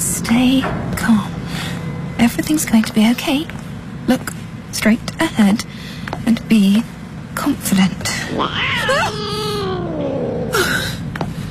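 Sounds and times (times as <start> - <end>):
speech: 0.3 - 1.4, 2.3 - 9.4
cat meowing: 8.3 - 10.7.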